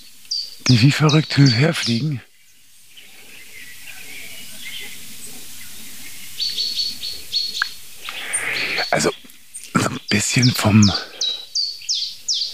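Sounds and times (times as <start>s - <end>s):
owl calls with short high-pitched chirping notes: 0.0s - 2.3s, 3.0s - 12.5s
speech: 0.7s - 2.3s, 10.2s - 11.2s.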